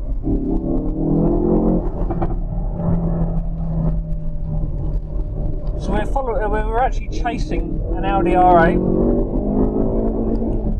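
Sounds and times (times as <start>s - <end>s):
Ford Focus RS hot hatch engine roaring under hard acceleration on the road: 0.0s - 10.7s
speech: 6.9s - 9.0s.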